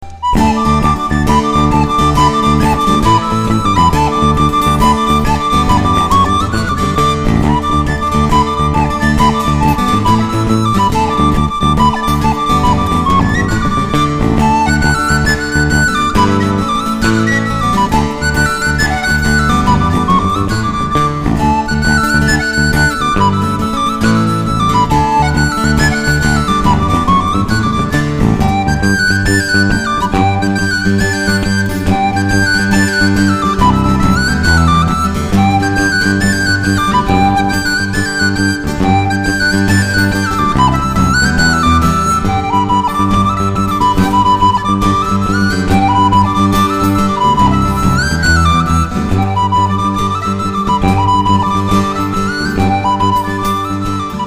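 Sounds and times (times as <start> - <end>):
jig music: 0.0 - 54.2.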